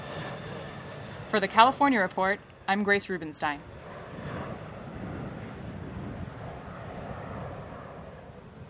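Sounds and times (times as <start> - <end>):
large firefighting air tanker plane engines roaring on takeoff: 0.0 - 8.6
speech: 1.3 - 3.7.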